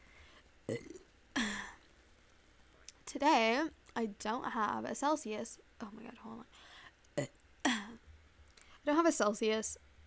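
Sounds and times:
person burping: 0.7s - 1.8s, 7.2s - 8.0s
speech: 3.1s - 7.4s, 8.8s - 9.8s.

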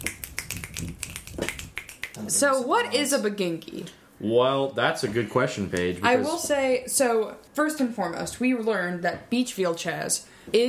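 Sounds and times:
several people snapping fingers: 0.0s - 2.2s
speech: 2.2s - 10.6s.

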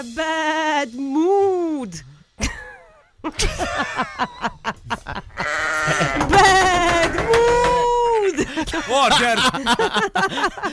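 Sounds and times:
speech: 0.0s - 2.1s, 3.2s - 7.3s, 8.3s - 10.7s
laughter: 2.4s - 10.7s
sheep bleating: 5.3s - 7.3s.

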